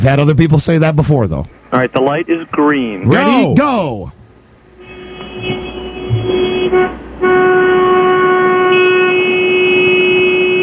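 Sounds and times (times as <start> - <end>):
speech: 0.0 - 4.2, 6.3 - 7.4
several car horns blaring in sustained honks: 4.7 - 10.6.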